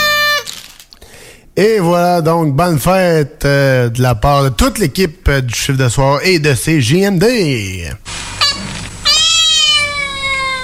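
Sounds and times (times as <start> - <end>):
speech: 1.6 - 8.3
cat meowing: 8.5 - 10.6.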